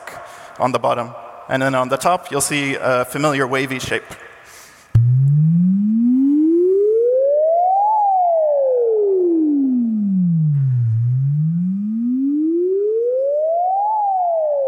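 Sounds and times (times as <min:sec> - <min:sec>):
speech: 0:00.6 - 0:04.3
pure sine wave tone gliding in pitch: 0:05.0 - 0:14.6.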